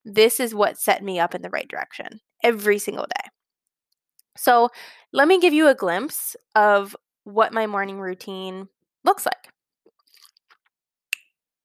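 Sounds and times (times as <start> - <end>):
speech: 0.0 - 3.4, 4.4 - 9.5
person sipping water with soft slurps: 10.0 - 10.6.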